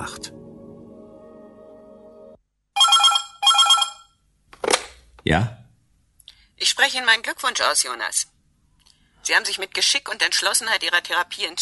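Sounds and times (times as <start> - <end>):
telephone ringing: 2.8 - 4.2
speech: 5.2 - 5.6, 6.6 - 8.3, 9.2 - 11.6.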